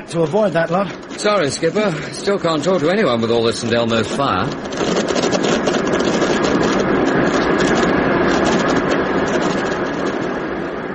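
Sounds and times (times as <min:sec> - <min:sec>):
airliner engines droning heard from the cabin: 0:00.0 - 0:10.9
speech: 0:00.1 - 0:05.1.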